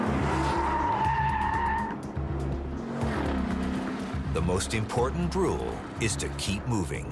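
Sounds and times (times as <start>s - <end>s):
car tires squealing in a high-pitched skid during high-speed evasive driving: 0.0s - 2.0s
car engine roaring and revving during high-speed evasive driving: 0.0s - 6.7s
speech: 4.4s - 7.1s.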